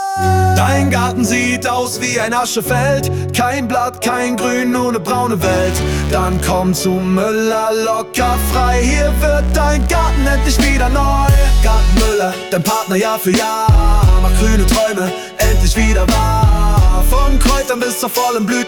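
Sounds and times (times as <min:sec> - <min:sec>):
hip hop music: 0:00.1 - 0:18.6.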